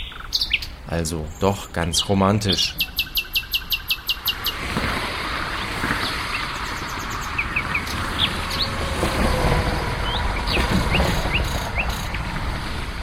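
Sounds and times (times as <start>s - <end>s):
male nightingale singing: 0.0s - 4.6s, 5.5s - 8.8s, 10.0s - 12.2s
traffic noise: 0.0s - 13.0s
speech: 0.9s - 2.9s.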